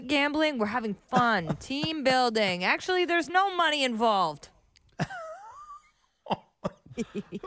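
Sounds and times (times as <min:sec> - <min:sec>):
speech: 0:00.1 - 0:05.2, 0:06.3 - 0:07.4
person laughing in breathy bursts: 0:04.9 - 0:07.4
person coughing with a wheezy tone: 0:06.3 - 0:07.4.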